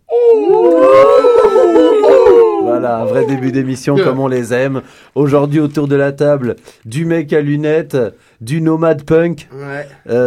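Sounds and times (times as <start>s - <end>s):
several people imitating owl hoots: 0.0s - 4.2s
speech: 2.8s - 10.2s.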